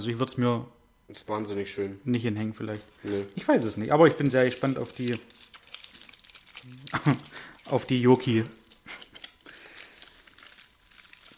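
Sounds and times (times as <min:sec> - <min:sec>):
speech: 0:00.0 - 0:05.4, 0:06.6 - 0:08.6
plastic snack wrapper crinkling while torn open and handled: 0:02.8 - 0:11.3
laughter: 0:06.8 - 0:07.3.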